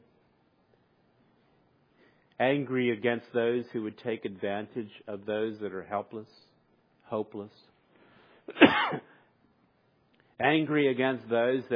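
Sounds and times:
speech: 0:02.4 - 0:06.5, 0:07.1 - 0:07.7, 0:08.5 - 0:09.1, 0:10.4 - 0:11.7
person sneezing: 0:08.4 - 0:09.2.

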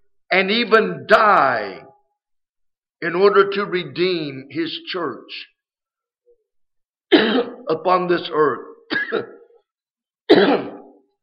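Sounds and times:
speech: 0:00.3 - 0:01.9, 0:03.0 - 0:05.5, 0:07.1 - 0:09.4, 0:10.3 - 0:10.8
person delivering a sermon coughing: 0:07.1 - 0:07.6, 0:08.9 - 0:09.6, 0:10.3 - 0:11.0
person delivering a sermon clearing throat: 0:07.1 - 0:07.7, 0:08.9 - 0:09.6, 0:10.3 - 0:11.0.

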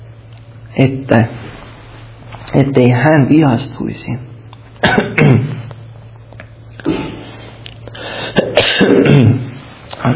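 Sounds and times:
faint steady low hum: 0:00.0 - 0:10.1
speech: 0:00.8 - 0:01.6, 0:02.5 - 0:05.5
person coughing: 0:04.8 - 0:05.7, 0:06.8 - 0:07.3, 0:08.0 - 0:09.6.

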